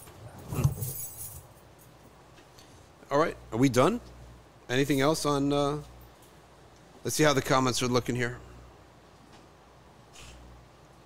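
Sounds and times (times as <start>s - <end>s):
keys jangling as they are handed over: 0.0s - 2.1s
speech: 3.1s - 4.1s, 4.7s - 5.9s, 7.0s - 8.4s.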